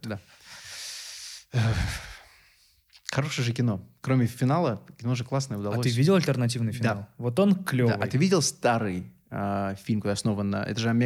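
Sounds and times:
speech: 0:00.0 - 0:00.4, 0:01.5 - 0:02.1, 0:03.1 - 0:11.0
person imitating heavy breathing of monsters: 0:00.4 - 0:02.7.

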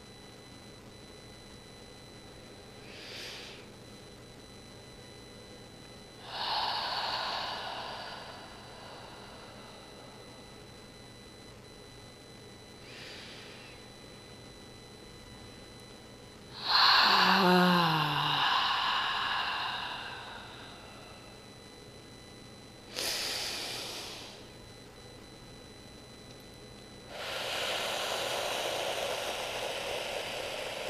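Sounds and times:
slow deep breaths in a guided breathing exercise: 0:02.8 - 0:03.7, 0:06.2 - 0:10.2, 0:12.8 - 0:13.8, 0:16.6 - 0:21.4, 0:22.9 - 0:24.5, 0:27.1 - 0:30.8.

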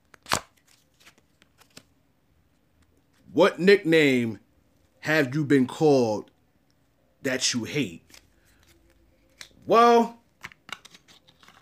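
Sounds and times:
deck of playing cards being shuffled: 0:00.1 - 0:01.9, 0:07.8 - 0:11.6
speech: 0:03.4 - 0:04.4, 0:05.0 - 0:06.3, 0:07.2 - 0:08.2, 0:09.6 - 0:10.2.

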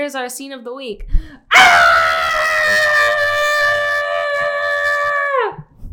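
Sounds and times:
speech: 0:00.0 - 0:02.9
person imitating a man screaming: 0:01.5 - 0:05.6.

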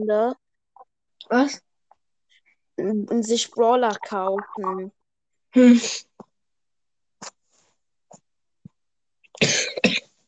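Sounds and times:
speech: 0:00.0 - 0:00.4, 0:01.2 - 0:01.7, 0:02.8 - 0:06.1, 0:09.4 - 0:09.7
person coughing: 0:09.4 - 0:10.2.

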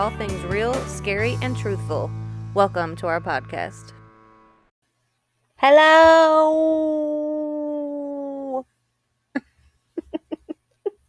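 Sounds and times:
speech: 0:00.0 - 0:04.0, 0:05.6 - 0:07.1
voice imitating a wolf howl: 0:05.6 - 0:08.6.

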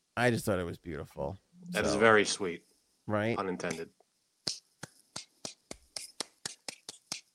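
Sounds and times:
speech: 0:00.2 - 0:04.6
person slowly clapping hands: 0:04.5 - 0:07.3.

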